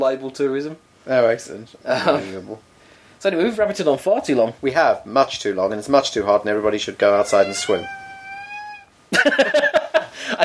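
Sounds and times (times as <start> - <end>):
speech: 0.0 - 8.0, 9.2 - 10.4
cat meowing in complaint: 7.0 - 9.0.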